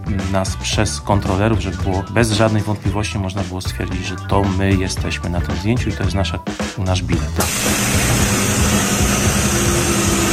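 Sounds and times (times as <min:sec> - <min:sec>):
speech: 0:00.1 - 0:08.4
city bus engine running heard from inside the bus: 0:07.4 - 0:10.3.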